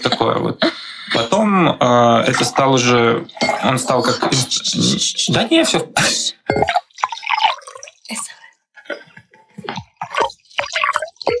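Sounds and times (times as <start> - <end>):
speech: 0.0 - 6.8
filtered tap water pouring into a glass: 2.3 - 4.3, 6.5 - 8.3, 9.7 - 11.3.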